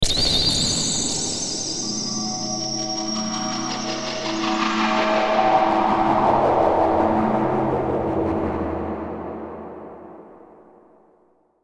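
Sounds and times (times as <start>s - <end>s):
eerie feedback squeal with delay: 0.0s - 9.9s.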